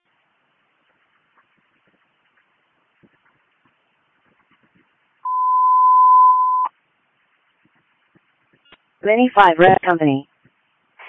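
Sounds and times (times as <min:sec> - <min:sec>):
dispatch radio electronic alert tone: 0:05.3 - 0:06.7
speech: 0:09.0 - 0:10.3.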